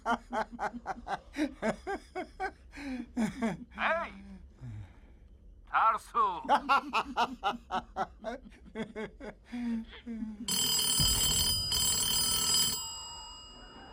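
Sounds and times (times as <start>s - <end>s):
snickering laughter: 0.0s - 3.6s, 6.5s - 10.2s
speech: 0.1s - 0.8s
telephone ringing in electronic tone: 10.5s - 13.9s.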